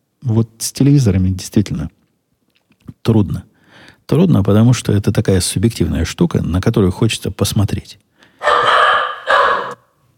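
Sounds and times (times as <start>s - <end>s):
speech: 0.2s - 2.0s, 3.0s - 3.5s, 4.1s - 8.0s
guard dog barking: 8.4s - 10.0s.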